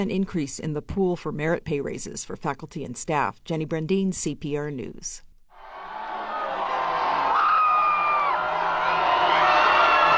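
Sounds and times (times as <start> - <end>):
speech: 0.0 - 5.3
excited hockey fans in a bar cheering a championship win: 5.5 - 10.1
hockey fans whooping and yelling: 5.6 - 10.1.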